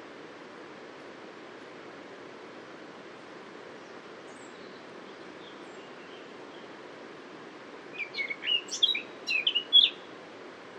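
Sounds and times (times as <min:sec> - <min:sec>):
Eurasian blackcap Sylvia atricapilla singing: 0:07.9 - 0:10.0.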